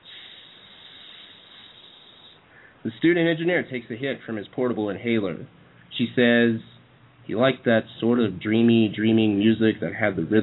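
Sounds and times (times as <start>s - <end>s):
woman holding a long steady hissing S sound: 0.0s - 2.4s
speech: 2.8s - 6.7s, 7.3s - 10.4s.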